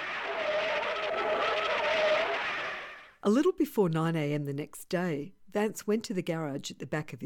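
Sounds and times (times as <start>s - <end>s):
car tires squealing and skidding as the vehicle swerves: 0.0s - 3.2s
speech: 3.2s - 7.2s.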